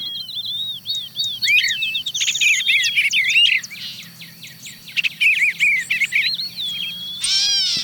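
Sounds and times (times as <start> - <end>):
dawn chorus of several birds chirping, trilling and whistling: 0.0 - 7.8
gray catbird cat-like mewing call: 6.1 - 7.8.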